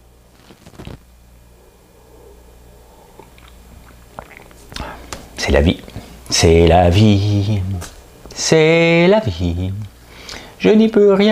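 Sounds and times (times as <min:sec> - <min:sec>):
steady low hum: 0:00.0 - 0:10.2
person sipping hot coffee: 0:01.6 - 0:05.1
lip and swallow sounds: 0:03.1 - 0:05.1
speech: 0:05.5 - 0:09.9, 0:10.6 - 0:11.3.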